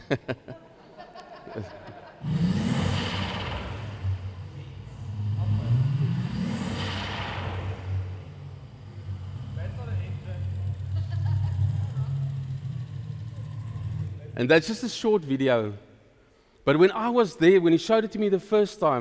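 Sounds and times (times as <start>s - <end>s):
faint voices and chuckling: 0.0s - 2.2s, 10.5s - 12.7s
speech: 0.1s - 0.6s, 1.6s - 2.4s, 14.4s - 15.9s, 16.7s - 18.9s
car engine revving against the rev limiter: 2.1s - 15.0s.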